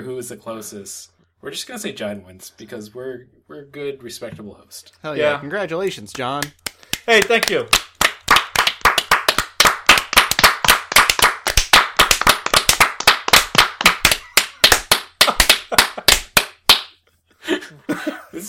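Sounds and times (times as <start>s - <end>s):
speech: 0.0s - 7.9s, 17.7s - 18.4s
hands clapping: 6.0s - 17.0s.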